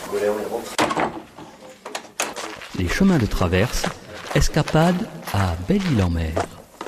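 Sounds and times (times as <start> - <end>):
speech: 0.1 - 1.0, 2.8 - 6.6
door shutting with a solid thud: 0.8 - 1.3.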